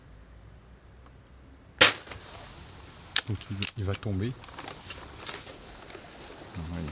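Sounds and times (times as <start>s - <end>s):
gunshot at a pigeon: 1.8s - 2.2s
speech: 3.3s - 4.6s, 6.6s - 6.9s.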